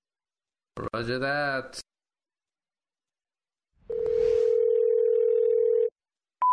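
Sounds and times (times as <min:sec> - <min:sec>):
speech: 0:00.8 - 0:01.8
telephone tones for a call-in hotline: 0:03.9 - 0:06.5.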